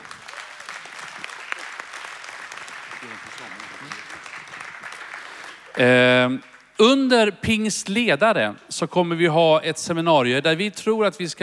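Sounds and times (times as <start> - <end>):
audience applause: 0.0 - 6.7
speech: 3.0 - 4.9, 5.8 - 11.4.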